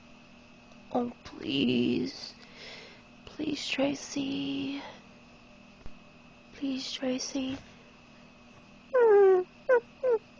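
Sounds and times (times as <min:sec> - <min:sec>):
speech: 0:01.0 - 0:02.4, 0:03.4 - 0:05.0, 0:06.6 - 0:07.7
person imitating puppy whimpering: 0:08.9 - 0:10.3.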